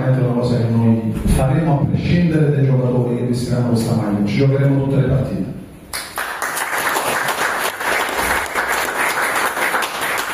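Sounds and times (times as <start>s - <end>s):
speech: 0.1s - 5.6s
audience applause for the team coach: 6.0s - 10.3s.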